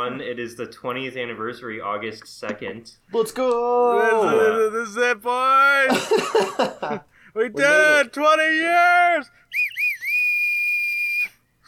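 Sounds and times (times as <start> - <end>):
speech: 0.0 - 9.6
laughter: 5.8 - 8.1
loud shrill whistle blown: 9.4 - 11.5.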